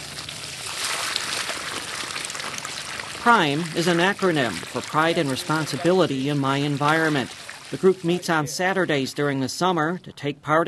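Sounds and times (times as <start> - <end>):
water filling buckets and jugs from tank: 0.0 - 8.4
speech: 3.2 - 10.6.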